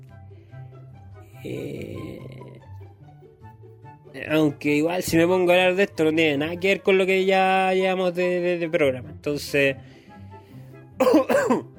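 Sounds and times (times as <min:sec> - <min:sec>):
speech: 0:01.4 - 0:02.3, 0:04.2 - 0:10.0
person coughing: 0:11.0 - 0:11.7.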